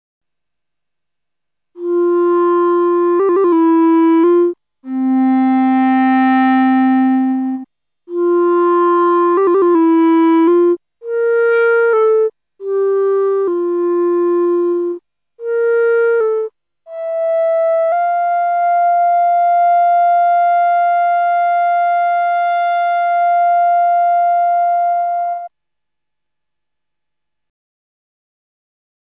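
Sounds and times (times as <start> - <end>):
clarinet melody: 1.8 - 25.5.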